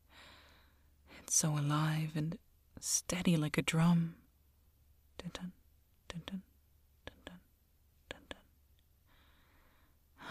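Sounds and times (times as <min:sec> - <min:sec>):
speech: 0:01.3 - 0:04.2, 0:05.2 - 0:06.5
soft drowsy exhale: 0:09.1 - 0:10.2.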